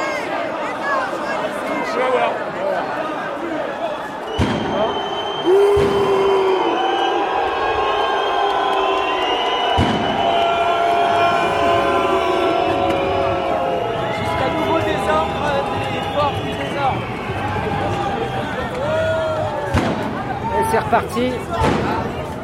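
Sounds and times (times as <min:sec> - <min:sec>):
crowd voices at a street protest: 0:00.0 - 0:22.4
sharp bangs and slams: 0:04.3 - 0:04.9, 0:05.7 - 0:06.1, 0:09.7 - 0:10.4, 0:19.6 - 0:20.3, 0:21.6 - 0:22.2
speech: 0:20.9 - 0:21.8.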